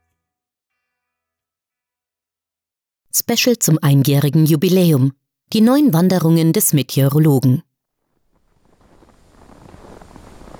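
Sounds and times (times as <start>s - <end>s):
speech: 3.1s - 7.7s
cold gusty wind blowing: 8.4s - 10.5s.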